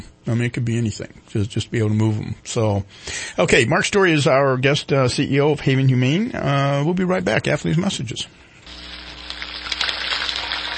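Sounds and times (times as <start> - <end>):
speech: 0.2 - 8.5
turkey deep frying in hot cooking oil: 8.7 - 10.7.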